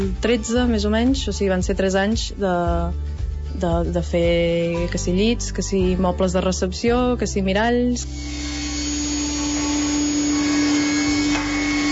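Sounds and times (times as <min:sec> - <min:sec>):
speech: 0:00.0 - 0:08.6
industrial saw cutting a plank in a small workshop: 0:08.1 - 0:11.8.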